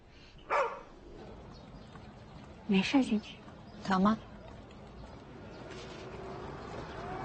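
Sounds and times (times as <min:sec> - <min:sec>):
dog barking: 0:00.5 - 0:00.9
speech: 0:02.7 - 0:04.3.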